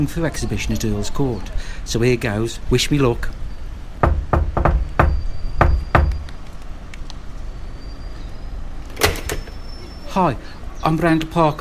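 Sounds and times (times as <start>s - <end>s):
speech: 0.0s - 3.4s, 10.2s - 11.5s
knocking on a flat door: 4.0s - 6.2s.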